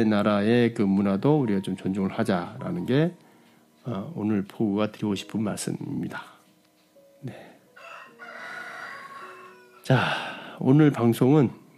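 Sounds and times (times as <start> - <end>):
speech: 0.0 - 3.2, 3.8 - 6.3, 7.2 - 7.5, 9.9 - 11.6
rooster crowing at a home: 7.8 - 9.9.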